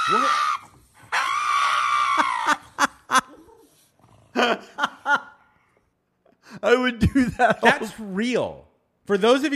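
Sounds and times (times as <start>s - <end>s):
dog screaming and yelping while getting its nails trimmed: 0.0s - 3.9s
speech: 6.6s - 9.5s.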